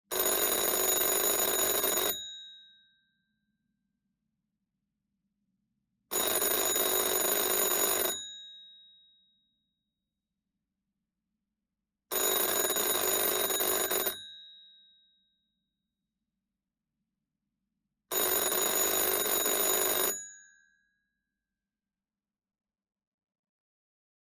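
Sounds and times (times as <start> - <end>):
antique wooden telephone ringing: 0.1 - 2.2, 6.1 - 8.2, 12.1 - 14.2, 18.1 - 20.2.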